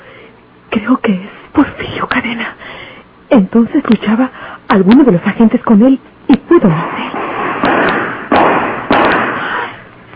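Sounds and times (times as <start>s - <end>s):
speech: 0.9s - 7.1s
gunshots outdoors in the street: 7.2s - 9.7s.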